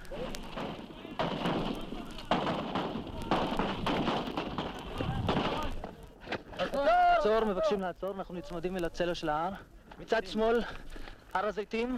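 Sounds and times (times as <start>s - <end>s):
sniper rifle shots: 0.5s - 5.7s
speech: 7.2s - 11.9s.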